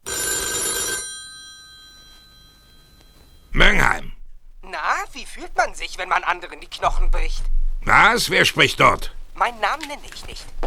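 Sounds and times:
office telephone bell ringing: 0:00.0 - 0:03.6
speech: 0:05.2 - 0:10.6.

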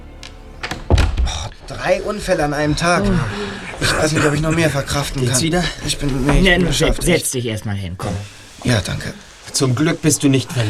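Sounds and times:
door swinging shut with a solid thunk: 0:00.6 - 0:01.5
speech: 0:01.7 - 0:10.6.

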